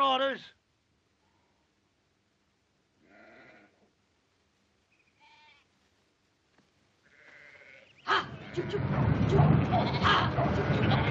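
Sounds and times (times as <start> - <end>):
speech: 0.2 - 0.6, 8.1 - 11.0
flock of sheep bleating while being driven: 3.0 - 3.8, 7.0 - 8.8, 9.7 - 11.0.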